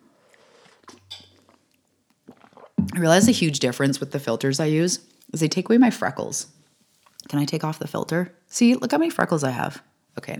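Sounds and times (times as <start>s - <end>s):
sipping hot tea: 2.2s - 3.2s
low hum: 2.8s - 3.6s
speech: 3.0s - 6.6s, 7.3s - 10.3s.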